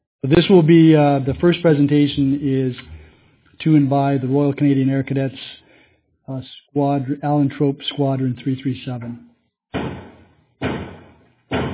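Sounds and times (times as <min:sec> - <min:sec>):
speech: 0:00.2 - 0:02.9, 0:03.6 - 0:05.6, 0:06.3 - 0:09.3
heavy knocks on a council chambers door: 0:09.8 - 0:11.7.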